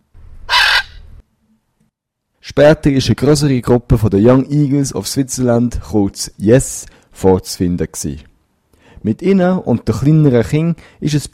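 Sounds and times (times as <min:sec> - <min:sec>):
parrot squawking at an aviation event: 0:00.5 - 0:01.2
speech: 0:02.6 - 0:08.3, 0:09.0 - 0:11.3.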